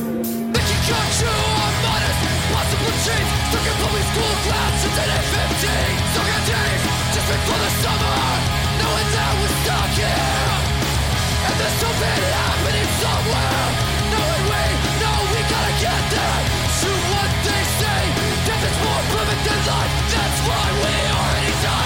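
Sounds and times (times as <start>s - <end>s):
heavy distorted guitars: 0.0s - 21.8s
loud dense recorded rock song: 0.0s - 21.8s
pounding drums: 0.0s - 21.8s
shouted vocals: 0.6s - 21.8s.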